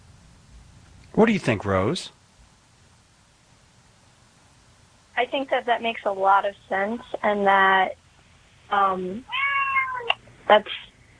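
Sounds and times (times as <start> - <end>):
speech: 1.2 - 2.2, 5.4 - 8.0, 8.7 - 9.4, 10.5 - 10.8
cat meowing: 9.3 - 10.2.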